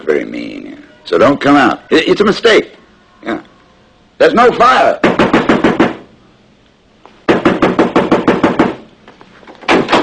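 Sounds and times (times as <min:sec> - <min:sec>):
speech: 0:00.1 - 0:03.5, 0:04.2 - 0:05.2
loud knocking on a door: 0:05.0 - 0:06.1, 0:07.3 - 0:08.8.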